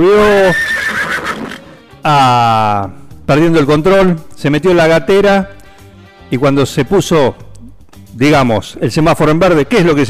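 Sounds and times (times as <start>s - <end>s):
speech: 0.0s - 0.7s, 2.0s - 5.6s, 6.3s - 7.4s, 8.2s - 10.0s
horse neighing: 0.0s - 1.9s.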